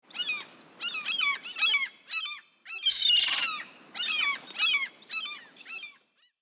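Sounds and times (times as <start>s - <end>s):
seagull: 0.1s - 6.3s.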